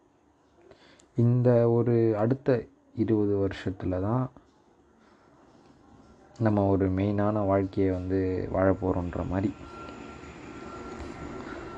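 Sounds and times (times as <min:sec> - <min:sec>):
speech: 0:01.2 - 0:04.4, 0:06.4 - 0:09.8
airplane roar passing overhead with faint whine: 0:06.9 - 0:11.7.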